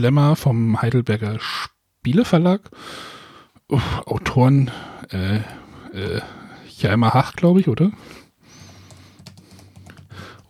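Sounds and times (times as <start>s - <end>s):
speech: 0.0s - 8.2s
clicking and tapping on a computer keyboard and mouse: 8.6s - 10.4s.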